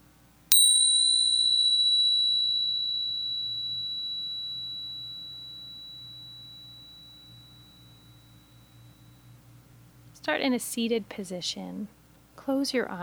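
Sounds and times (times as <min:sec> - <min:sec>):
bright bell strike ringing: 0:00.5 - 0:08.6
speech: 0:10.2 - 0:13.0.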